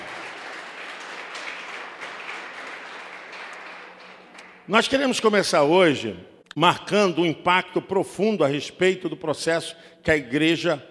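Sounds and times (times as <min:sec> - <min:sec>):
crowd applauding: 0:00.0 - 0:04.7
speech: 0:04.7 - 0:10.8.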